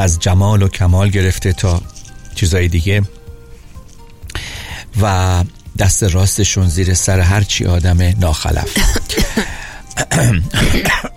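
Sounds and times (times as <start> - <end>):
speech: 0.0 - 3.2, 5.0 - 11.1
harsh coughing: 8.6 - 11.1
throat clearing: 8.6 - 11.1.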